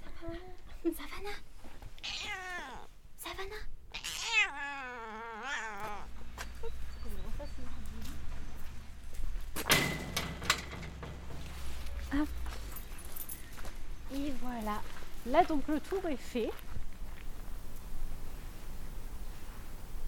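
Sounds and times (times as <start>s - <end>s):
speech: 0.2s - 1.5s, 15.3s - 16.7s
cat meowing at an animal shelter: 2.0s - 2.9s, 3.9s - 6.1s
rustling: 5.5s - 20.0s.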